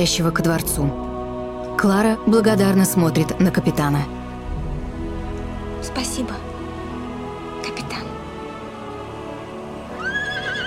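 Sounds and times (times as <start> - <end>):
speech: 0.0 - 1.1, 1.8 - 4.2, 5.9 - 6.5
cartoon horse whinny: 10.0 - 10.6.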